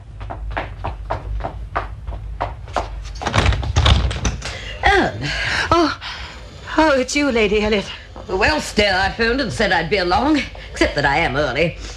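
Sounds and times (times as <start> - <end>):
footsteps of woman going down to answer front door: 0.0 - 11.9
front door creaking open: 1.0 - 9.4
speech: 6.8 - 11.9.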